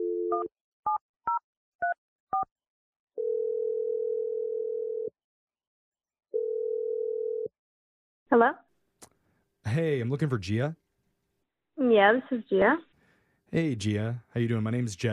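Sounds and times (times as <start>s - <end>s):
speech: 0.4s - 1.0s, 8.3s - 8.6s, 9.8s - 10.8s, 11.8s - 12.9s, 13.5s - 15.1s
long steady telephone ringing tones: 3.2s - 5.1s, 6.4s - 7.5s.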